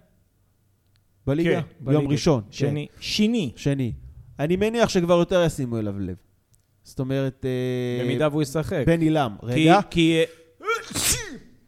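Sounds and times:
speech: 0:01.3 - 0:06.2, 0:06.8 - 0:11.2
person sneezing: 0:10.6 - 0:11.6.

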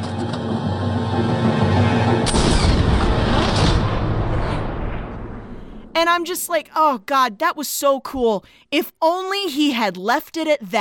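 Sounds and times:
dense action film soundtrack music: 0:00.0 - 0:06.0
musket gunshot in a film scene: 0:02.2 - 0:05.2
speech: 0:06.0 - 0:10.8.

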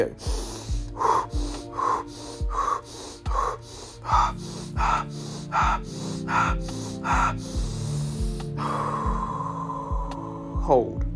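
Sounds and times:
speech: 0:00.0 - 0:00.4, 0:10.7 - 0:11.0
energising breathing, inhaling through nose and exhaling through mouth: 0:00.0 - 0:10.9.

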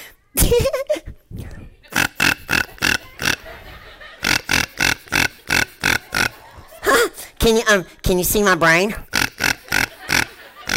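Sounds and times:
laughter: 0:00.4 - 0:01.2, 0:01.8 - 0:07.4, 0:09.3 - 0:10.7
voice imitating pig grunts and oinks to call pigs: 0:01.9 - 0:03.5, 0:04.2 - 0:07.2, 0:08.9 - 0:10.7
speech: 0:07.4 - 0:09.2.

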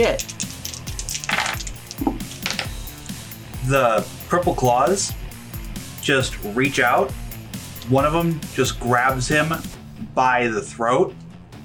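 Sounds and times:
speech: 0:00.0 - 0:00.4, 0:03.6 - 0:05.2, 0:06.1 - 0:07.2, 0:07.9 - 0:11.2
handful of dice tumbling across a hard tabletop: 0:00.0 - 0:02.7.

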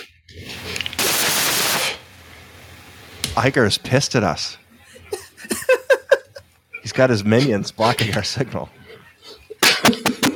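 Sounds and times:
loud burst of broadband noise: 0:00.5 - 0:03.1
speech: 0:03.4 - 0:04.6, 0:07.0 - 0:08.8
laughter: 0:04.8 - 0:10.3.

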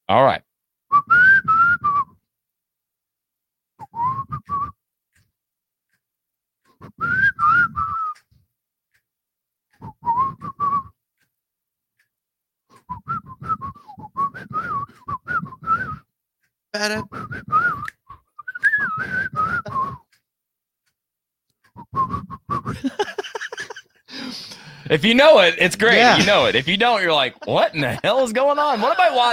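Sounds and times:
speech: 0:00.1 - 0:00.4, 0:16.8 - 0:17.2, 0:24.9 - 0:29.3
person whistling a short melody: 0:00.9 - 0:02.2, 0:03.8 - 0:04.8, 0:06.8 - 0:08.3, 0:09.8 - 0:11.0, 0:12.8 - 0:16.1, 0:17.0 - 0:20.2, 0:21.8 - 0:23.0
laughter: 0:22.7 - 0:24.4, 0:25.0 - 0:29.3.

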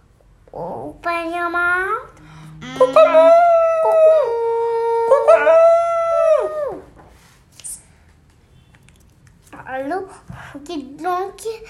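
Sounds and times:
adult male chicken rooster crowing: 0:02.7 - 0:06.8.

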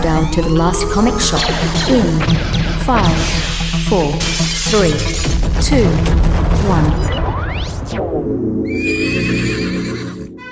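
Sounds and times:
speech: 0:00.2 - 0:07.2, 0:07.9 - 0:09.4
fiery horse neighing: 0:08.7 - 0:10.4.

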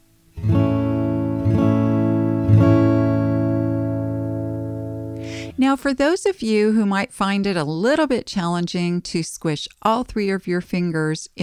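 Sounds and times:
A chord on guitar fretted at the second fret: 0:00.0 - 0:05.6
speech: 0:05.6 - 0:11.4.

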